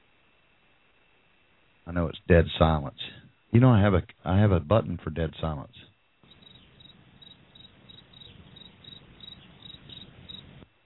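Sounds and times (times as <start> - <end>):
speech: 1.9 - 5.9
crickets chirping: 6.2 - 10.7.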